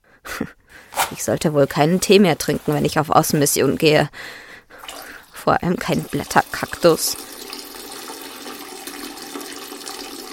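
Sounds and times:
speech: 0.4s - 4.4s, 5.4s - 7.3s
toilet flushing: 4.8s - 10.3s.

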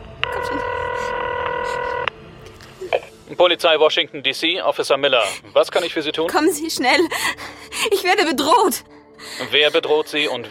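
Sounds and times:
steady electronic telephone tone of a number being dialed: 0.2s - 2.1s
speech: 3.3s - 10.4s.

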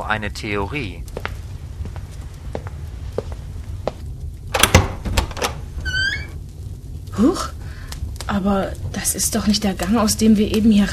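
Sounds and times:
speech: 0.0s - 1.2s, 7.2s - 7.6s, 8.3s - 10.9s
door hinges creaking: 4.5s - 6.4s.

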